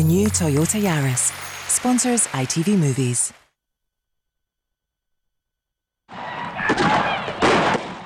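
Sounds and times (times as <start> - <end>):
speech: 0.1 - 3.4
gunshots: 6.7 - 8.0.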